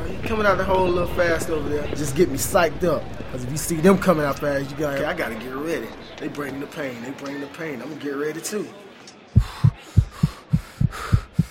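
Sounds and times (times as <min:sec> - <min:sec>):
speech: 0:00.3 - 0:09.5
rapid heartbeat racing from nervousness: 0:09.4 - 0:11.4.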